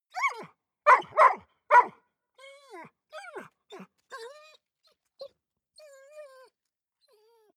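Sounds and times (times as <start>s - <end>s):
dog barking and whining: 0.1s - 4.6s.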